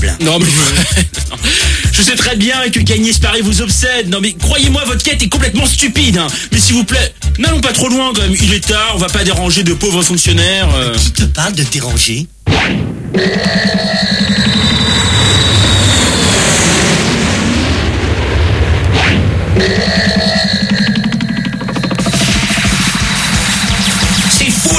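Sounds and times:
laughter: 0:00.2 - 0:02.4
speech: 0:00.2 - 0:13.8
airplane engine roar while parking on a building roof: 0:13.1 - 0:24.7.

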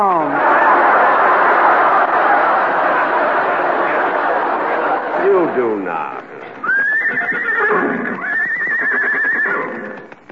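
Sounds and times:
laughter: 0:00.0 - 0:07.1
horses' hooves clip-clopping: 0:06.0 - 0:10.3
horses being led in for a ride whinnying: 0:06.5 - 0:10.2.

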